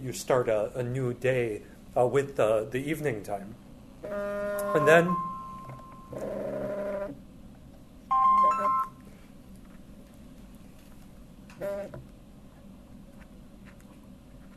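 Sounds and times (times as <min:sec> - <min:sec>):
speech: 0:00.0 - 0:05.3, 0:06.1 - 0:06.8
mobile phone ringtone: 0:04.6 - 0:06.2, 0:08.1 - 0:09.0.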